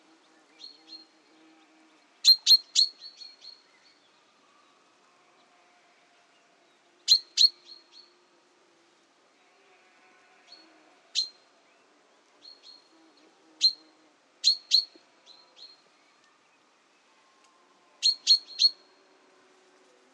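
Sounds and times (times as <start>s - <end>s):
common chaffinch calling in bright sharp chips: 2.3s - 3.6s, 7.1s - 7.8s, 14.4s - 15.0s, 18.0s - 18.8s.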